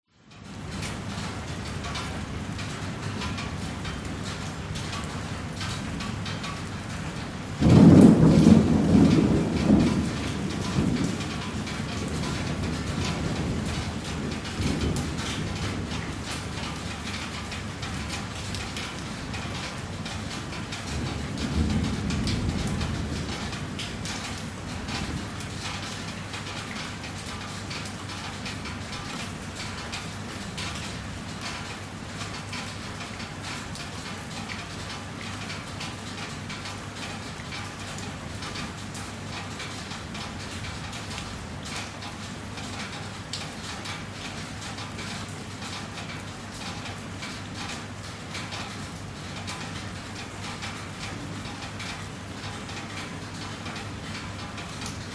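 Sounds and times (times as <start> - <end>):
very light rain on a house metal roof outside: 0.1 - 55.1
distant thunder: 7.2 - 27.4.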